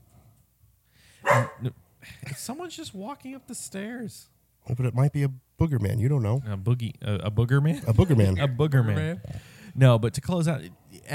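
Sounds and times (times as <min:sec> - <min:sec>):
dog barking sharply: 0:01.2 - 0:01.7
speech: 0:01.6 - 0:11.1.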